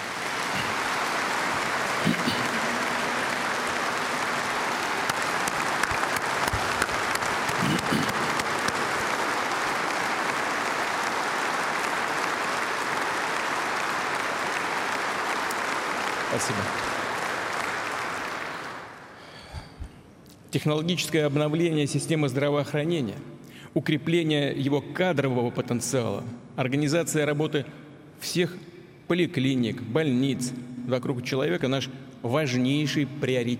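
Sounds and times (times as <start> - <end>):
audience at a party congress applauding: 0.0 - 19.4
speech: 16.4 - 16.9, 20.6 - 33.5.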